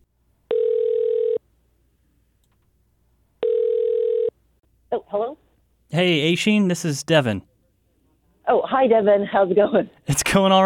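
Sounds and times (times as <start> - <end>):
electronic telephone ringback tones: 0.5 - 1.4, 3.4 - 4.4
speech: 4.9 - 7.5, 8.5 - 10.6.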